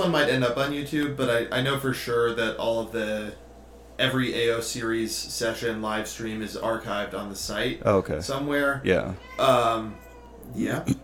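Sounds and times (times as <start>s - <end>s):
speech: 0.0s - 3.4s, 4.0s - 11.0s
cat meowing: 9.1s - 10.6s.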